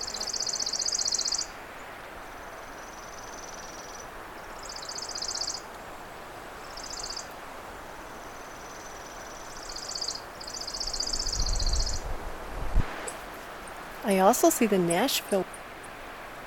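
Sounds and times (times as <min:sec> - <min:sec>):
chipping sparrow singing dry rapid trills in woods: 0:00.0 - 0:01.5, 0:04.6 - 0:05.7, 0:06.6 - 0:07.3, 0:08.7 - 0:12.0
faint hiss: 0:00.0 - 0:16.4
steady woodland rustle: 0:00.0 - 0:16.4
speech: 0:14.1 - 0:15.6.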